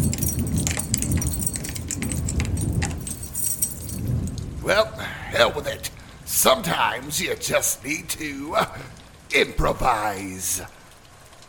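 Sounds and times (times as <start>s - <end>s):
keys jangling and scraping in a lock: 0.0s - 4.4s
steady low rumble: 0.0s - 9.3s
speech: 4.7s - 10.8s.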